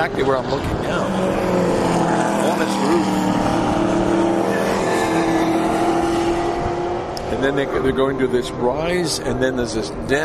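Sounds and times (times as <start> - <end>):
speech: 0.0 - 1.7, 2.5 - 3.6, 7.4 - 10.2
race car engines roaring coming out of a corner on a track: 0.0 - 10.2.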